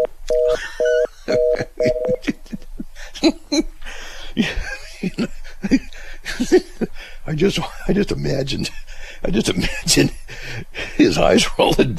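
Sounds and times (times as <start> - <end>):
telephone line tone beeps after a caller hangs up: 0.0 - 2.2
people laughing: 0.5 - 3.7, 4.4 - 6.9
speech: 7.4 - 10.2, 11.1 - 11.9.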